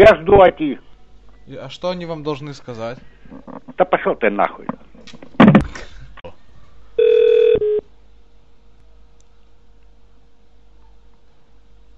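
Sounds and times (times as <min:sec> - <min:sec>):
speech: 0:00.0 - 0:00.8, 0:01.5 - 0:06.4
telephone ringing with an incoming call: 0:07.0 - 0:07.8.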